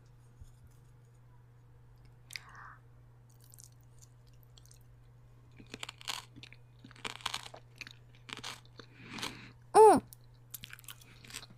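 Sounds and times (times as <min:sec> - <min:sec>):
person chewing and crunching food while tasting it: 0:03.3 - 0:11.5.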